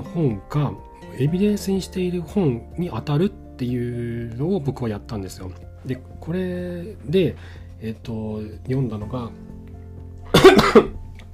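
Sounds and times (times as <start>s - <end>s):
speech: 0.2s - 9.5s, 10.4s - 11.0s
person coughing: 10.3s - 11.0s
throat clearing: 10.3s - 11.0s.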